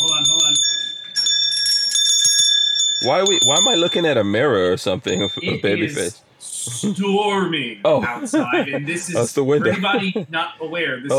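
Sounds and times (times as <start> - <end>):
bright bell ringing: 0.0 - 6.2
speech: 3.0 - 11.1
laughter: 4.7 - 7.1, 7.8 - 11.1.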